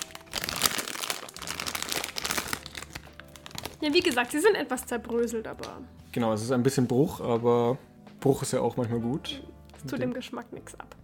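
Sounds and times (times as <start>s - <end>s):
crinkly plastic snack bag being torn open: 0.0s - 4.4s
speech: 3.8s - 11.0s.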